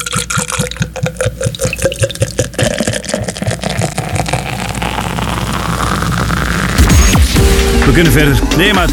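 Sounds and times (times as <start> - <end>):
water glugging and pouring into a container during a drinking break: 0.0 - 6.7
speech: 7.9 - 8.9.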